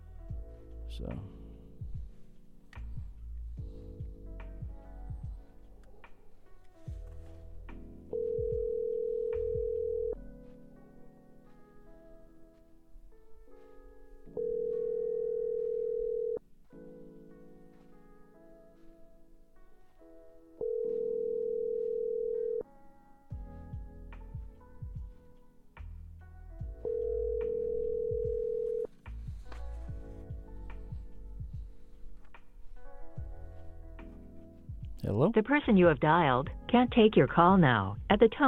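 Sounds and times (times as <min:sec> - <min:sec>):
continuous sound: 0:00.0 - 0:38.4
speech: 0:01.0 - 0:01.4, 0:35.3 - 0:38.4
telephone ringback tones while placing a call: 0:08.1 - 0:10.2, 0:14.3 - 0:16.4, 0:20.6 - 0:22.7, 0:26.8 - 0:28.9.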